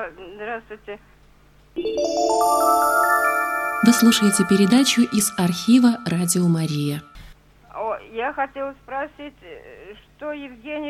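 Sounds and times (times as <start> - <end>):
speech: 0.0 - 1.2, 1.8 - 7.2, 8.1 - 10.8
electronic telephone ringtone signalling an incoming call: 1.8 - 7.1.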